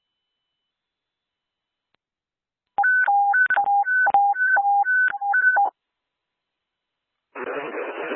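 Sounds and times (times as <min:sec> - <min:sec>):
telephone keypad tones during a daily phone test: 0:02.8 - 0:05.7.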